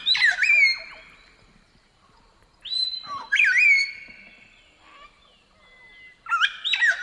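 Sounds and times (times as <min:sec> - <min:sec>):
palm cockatoo giving whistled warbling calls: 0:00.0 - 0:01.3, 0:02.6 - 0:07.0.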